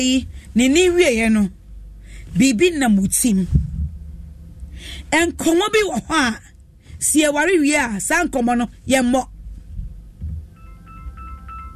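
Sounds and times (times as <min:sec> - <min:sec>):
speech: 0:00.0 - 0:01.6, 0:02.3 - 0:03.6, 0:04.8 - 0:09.3
low rumble: 0:00.0 - 0:11.7
electronic phone ringtone chirping: 0:10.5 - 0:11.7.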